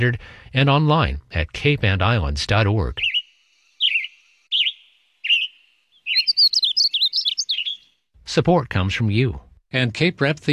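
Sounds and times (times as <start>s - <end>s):
speech: 0.0s - 3.1s, 8.4s - 10.5s
western tanager singing: 2.9s - 8.0s.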